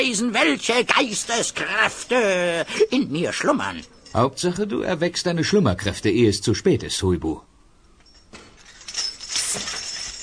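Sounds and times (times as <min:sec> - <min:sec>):
speech: 0:00.0 - 0:07.5
glass clinking on fireplace mantel: 0:08.0 - 0:10.2.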